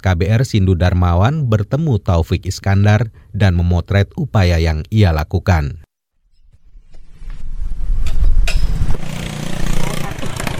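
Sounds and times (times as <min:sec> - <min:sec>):
speech: 0:00.0 - 0:05.9
underbone motorcycle engine starting and idling: 0:08.6 - 0:10.5.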